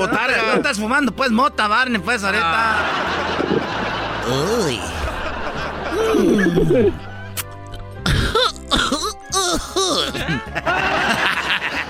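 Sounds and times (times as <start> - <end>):
laughter: 0.0 - 0.8, 2.3 - 7.8, 9.4 - 11.8
speech: 0.0 - 5.0, 6.1 - 7.1, 9.8 - 11.3
person coughing hoarsely after smoking: 8.0 - 10.5.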